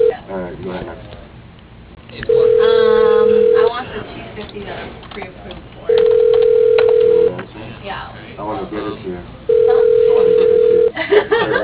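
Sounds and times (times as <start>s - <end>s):
telephone ringback tone on a dialed call: 2.3s - 3.8s, 5.9s - 7.4s, 9.5s - 11.0s
laughter: 11.0s - 11.6s.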